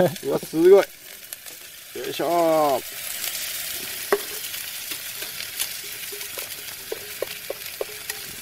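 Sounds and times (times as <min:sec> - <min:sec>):
speech: 0:00.0 - 0:01.0, 0:02.0 - 0:03.2
ground meat and onions sizzling in oil in a hot frying pan: 0:00.0 - 0:08.3
spatula scraping and tapping while stirring: 0:02.9 - 0:08.3.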